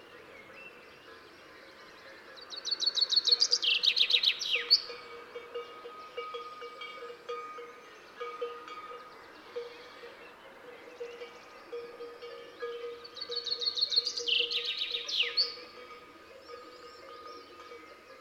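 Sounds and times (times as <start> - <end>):
common chaffinch Fringilla coelebs singing: 0.0 - 18.1.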